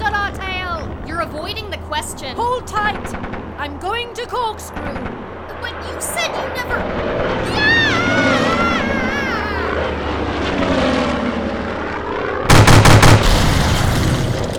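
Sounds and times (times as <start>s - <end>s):
propeller aircraft engine drone: 0.0s - 14.5s
speech: 1.4s - 8.4s
gunshots during an aerial chase: 12.5s - 14.5s.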